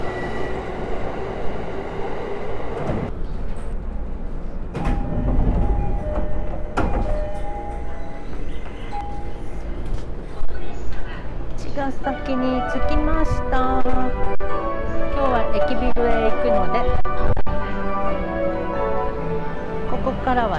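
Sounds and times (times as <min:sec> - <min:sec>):
low rumble inside a moving train carriage: 0:00.0 - 0:20.5
clunks in a moving train carriage: 0:04.6 - 0:09.2
speech: 0:11.9 - 0:14.3, 0:20.2 - 0:20.5.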